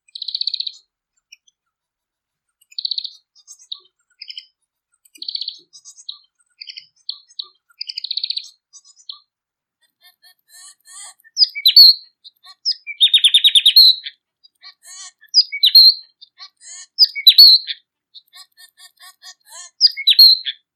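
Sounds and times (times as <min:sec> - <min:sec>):
bird singing: 0:00.0 - 0:00.9, 0:02.7 - 0:09.3, 0:11.0 - 0:18.4, 0:19.6 - 0:20.7.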